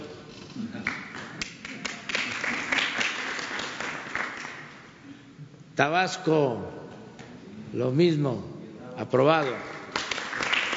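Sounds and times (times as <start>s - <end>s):
crowd clapping: 0.6s - 4.8s, 9.3s - 10.7s
speech: 5.8s - 6.8s, 7.7s - 9.8s.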